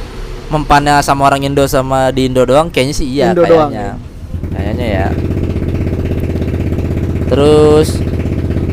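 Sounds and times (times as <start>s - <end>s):
speech: 0.5s - 5.5s, 7.4s - 8.1s
motorcycle engine idling while warming up: 3.3s - 8.7s.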